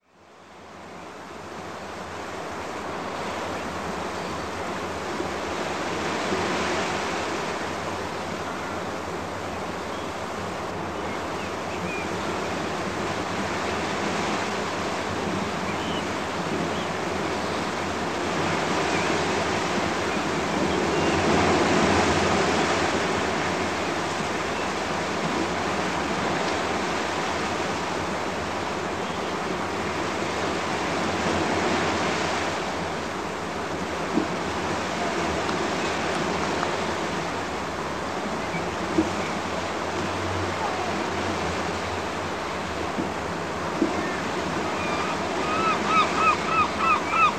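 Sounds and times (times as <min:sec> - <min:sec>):
quiet beach ambience: 0:00.0 - 0:47.3.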